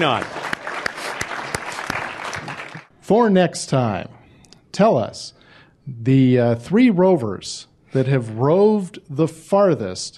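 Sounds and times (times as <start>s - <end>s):
speech: 0.0s - 0.4s, 3.1s - 4.2s, 4.8s - 10.1s
group applause: 0.0s - 2.9s
sharp louder claps: 0.0s - 2.9s.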